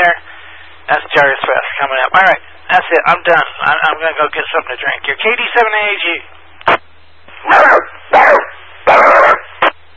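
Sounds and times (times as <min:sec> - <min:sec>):
low steady hum: 0:00.0 - 0:09.9
speech: 0:01.2 - 0:06.8, 0:07.4 - 0:09.1
dog barking: 0:07.4 - 0:09.5.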